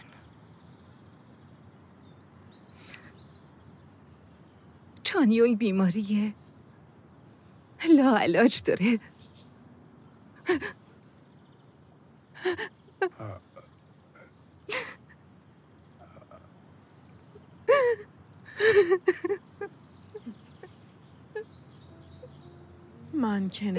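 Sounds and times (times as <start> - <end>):
speech: 5.1 - 6.4, 8.0 - 9.1, 23.5 - 23.7
person sobbing with gasping breaths and broken cries: 12.4 - 13.6, 17.7 - 19.4.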